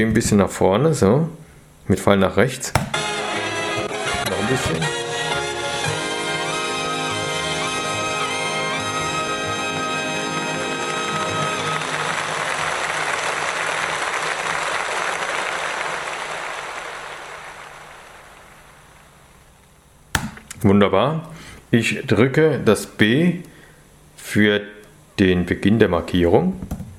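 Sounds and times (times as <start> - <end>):
speech: 0.0 - 3.1, 4.5 - 5.0, 20.7 - 23.5, 24.2 - 26.8
ringing final musical chord: 3.0 - 12.6
crowd applauding: 8.4 - 19.0.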